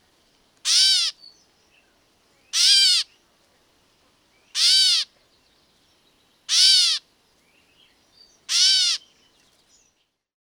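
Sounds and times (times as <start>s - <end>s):
catbird mewing: 0.7s - 1.1s, 2.6s - 3.0s, 4.6s - 5.0s, 6.5s - 7.0s, 8.5s - 9.0s.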